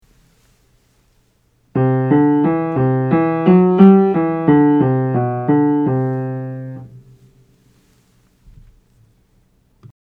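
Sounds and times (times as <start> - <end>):
modal scales for aural training: 1.8 - 7.2.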